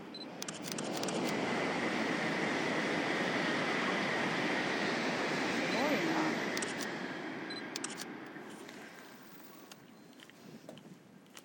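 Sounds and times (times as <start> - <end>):
Shinkansen bullet train passing: 0.0 - 10.2.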